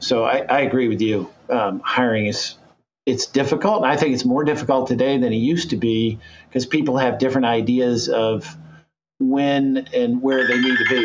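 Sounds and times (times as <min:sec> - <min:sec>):
speech: 0:00.1 - 0:08.6, 0:09.2 - 0:11.0
phone ringing with a steady electronic tone: 0:10.3 - 0:11.0.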